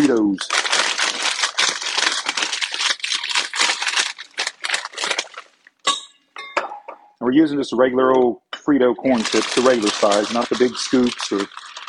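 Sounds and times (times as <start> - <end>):
speech: 0.0 - 0.7, 7.2 - 11.6
empty pretzel bag crinkling while being folded up: 0.0 - 5.7, 9.1 - 11.8.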